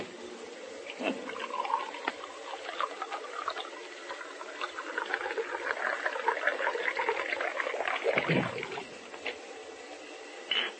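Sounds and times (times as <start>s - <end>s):
drink pouring into a glass: 1.0s - 8.9s.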